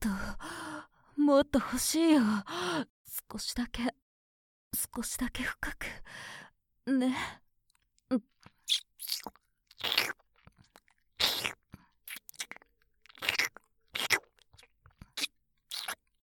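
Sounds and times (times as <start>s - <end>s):
speech: 1.3s - 4.0s, 4.7s - 7.4s, 8.1s - 10.1s
wet smacking kiss sounds: 8.5s - 10.2s, 11.2s - 14.3s, 15.0s - 16.0s.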